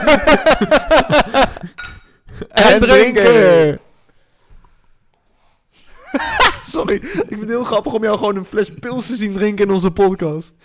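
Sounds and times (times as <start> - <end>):
speech: 0.0 - 1.4, 2.6 - 3.8, 6.1 - 10.6
laughter: 0.0 - 1.8, 5.9 - 7.6
beer glasses clinking together in a toast: 1.8 - 2.2.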